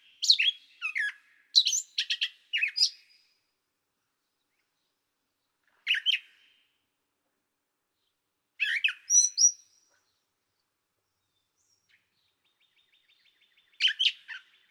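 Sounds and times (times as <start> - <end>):
Gray catbird song of harsh chatters, squeaks and slurred whistles: 0.1 - 3.2, 8.6 - 10.3, 11.2 - 14.7.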